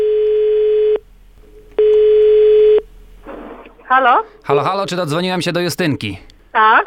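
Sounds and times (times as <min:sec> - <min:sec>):
telephone ringback tone: 0:00.0 - 0:01.0, 0:01.8 - 0:02.8
speech: 0:03.9 - 0:06.8.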